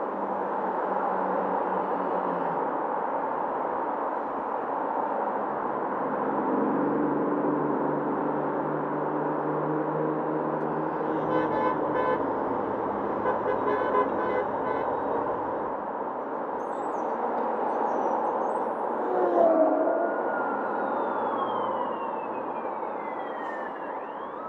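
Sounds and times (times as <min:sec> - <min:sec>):
city ambience: 0:00.0 - 0:24.4.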